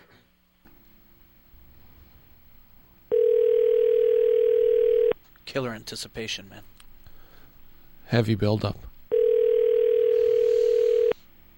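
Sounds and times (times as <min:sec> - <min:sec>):
faint hum: 0:00.0 - 0:11.5
telephone ringing tone on an outgoing call: 0:03.1 - 0:05.2, 0:09.1 - 0:11.2
speech: 0:05.5 - 0:06.7, 0:08.1 - 0:08.9.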